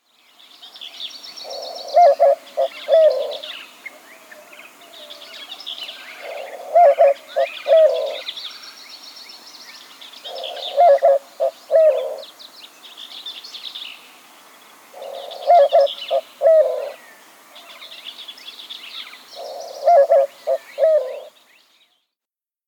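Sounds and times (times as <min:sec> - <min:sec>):
white-winged dove cooing in three- and four-note phrases: 0:01.4 - 0:05.3, 0:06.0 - 0:08.4, 0:10.2 - 0:12.3, 0:14.9 - 0:17.1, 0:19.4 - 0:21.4.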